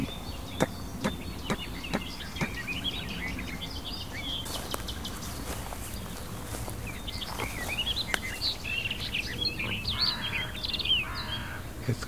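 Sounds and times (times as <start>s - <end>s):
ambience: 0.0s - 12.0s
nesting crows calling outdoors: 0.0s - 12.0s
soft rustling or stepping: 4.5s - 9.2s.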